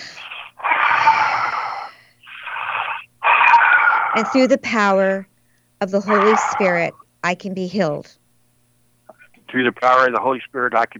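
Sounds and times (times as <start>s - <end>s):
deep breath in and out during a guided healing prayer: 0.0s - 3.0s
speech: 4.2s - 8.2s, 9.5s - 10.9s.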